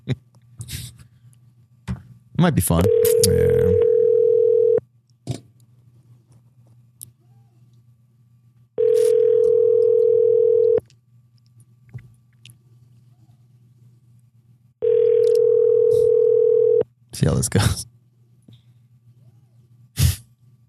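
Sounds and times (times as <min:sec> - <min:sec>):
faint low hum: 0:00.0 - 0:20.6
speech: 0:02.4 - 0:03.9, 0:17.4 - 0:17.7
ringback tone of an outgoing phone call: 0:02.8 - 0:04.8, 0:08.8 - 0:10.8, 0:14.8 - 0:16.8.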